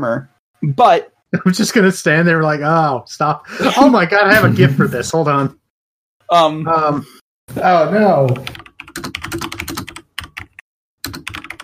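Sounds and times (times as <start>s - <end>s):
speech: 0.0s - 5.6s, 6.3s - 9.6s
rapid keyboard typing: 8.2s - 11.6s.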